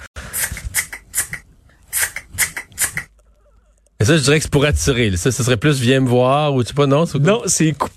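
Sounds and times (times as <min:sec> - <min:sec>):
person imitating cutting with mouth snipping sounds: 0:00.3 - 0:03.8
speech: 0:04.0 - 0:07.9.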